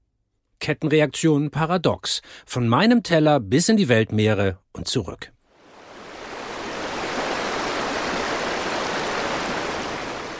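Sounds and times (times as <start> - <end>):
speech: 0.7 - 5.4
mountain stream rushing: 5.6 - 10.3.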